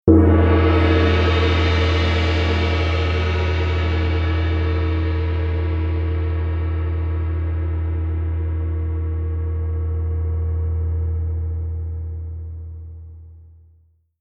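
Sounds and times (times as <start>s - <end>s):
large gong: 0.1s - 13.2s.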